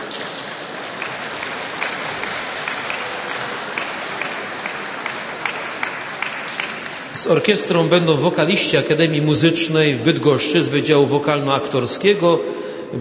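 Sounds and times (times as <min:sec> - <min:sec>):
large crowd applauding: 0:00.0 - 0:08.7
speech: 0:07.2 - 0:13.0.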